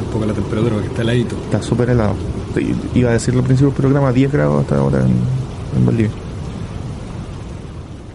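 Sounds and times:
thunderstorm: 0.0s - 8.1s
speech: 0.2s - 6.2s.

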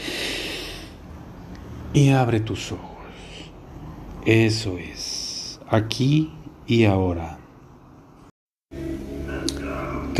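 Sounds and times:
deep breath in: 0.0s - 1.0s
speech: 1.9s - 2.9s, 4.2s - 7.4s.

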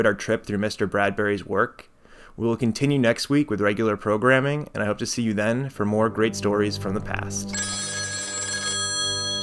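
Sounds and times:
speech: 0.0s - 7.9s
telephone bell ringing: 7.5s - 9.4s.

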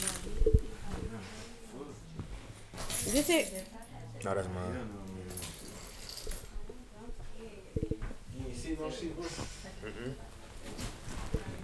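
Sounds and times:
keys shaken in a metallic jingle: 0.0s - 0.6s, 2.7s - 3.9s, 5.3s - 6.6s
voices talking: 0.0s - 11.6s
speech: 3.1s - 5.1s, 8.7s - 11.4s.

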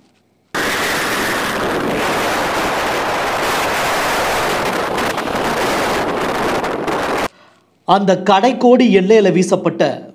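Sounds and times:
strong sea wind roaring: 0.6s - 7.3s
speech: 7.9s - 10.1s.

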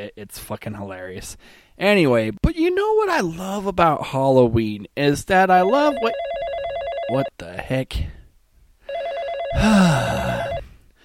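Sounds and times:
speech: 0.0s - 6.2s, 7.1s - 8.2s, 9.5s - 10.5s
electronic telephone ringing: 5.6s - 7.3s, 8.9s - 10.7s.

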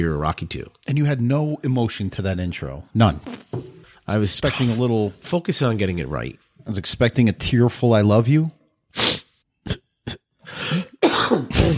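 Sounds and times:
speech: 0.0s - 3.4s, 4.1s - 10.8s
person with a cold coughing chesty coughs: 9.7s - 11.7s.

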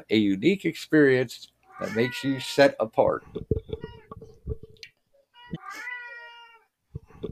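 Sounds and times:
speech: 0.0s - 3.8s
stray cat meowing: 1.7s - 2.7s, 3.7s - 4.1s, 5.4s - 6.7s.

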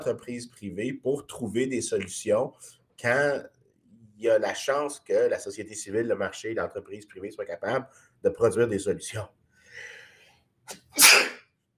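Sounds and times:
speech: 0.0s - 3.6s, 4.2s - 10.0s, 10.7s - 11.3s
person sneezing: 10.7s - 11.5s.

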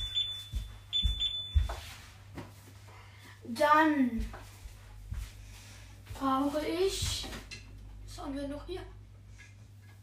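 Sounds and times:
refrigerator door alarm beeping: 0.0s - 1.8s
speech: 3.5s - 4.4s, 6.2s - 7.4s, 8.2s - 9.0s.

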